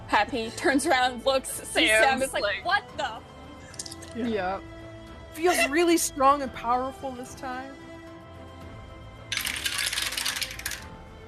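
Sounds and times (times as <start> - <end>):
speech: 0.2 - 3.3, 4.2 - 4.7, 5.4 - 7.8
several dice rattling across a hard surface: 3.7 - 4.2, 9.3 - 10.9.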